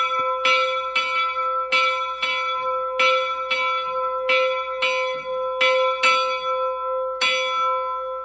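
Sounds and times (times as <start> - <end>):
small church sanctus bell ringing: 0.0 - 8.2.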